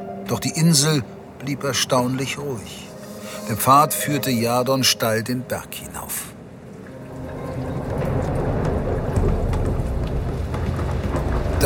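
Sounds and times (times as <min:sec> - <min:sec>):
speech: 0:00.3 - 0:06.2
heavy rain in a storm: 0:06.4 - 0:11.6
rolling thunder in a storm: 0:07.2 - 0:11.6.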